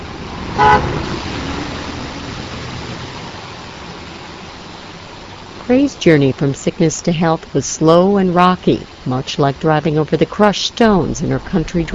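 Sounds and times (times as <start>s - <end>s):
low steady hum of street traffic along a city's main street: 0.0s - 11.9s
single short friendly car horn toot: 0.6s - 1.0s
speech: 0.6s - 1.3s, 5.7s - 11.9s.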